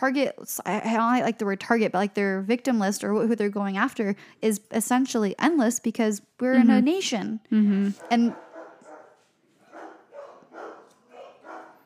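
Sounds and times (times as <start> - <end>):
speech: 0.0 - 8.4
household dogs barking: 8.0 - 11.8.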